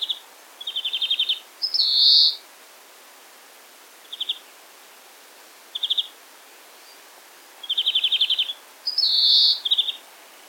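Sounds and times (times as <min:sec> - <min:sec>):
European greenfinch Chloris chloris song: 0:00.0 - 0:02.4, 0:04.0 - 0:04.5, 0:05.7 - 0:06.1, 0:07.6 - 0:10.4.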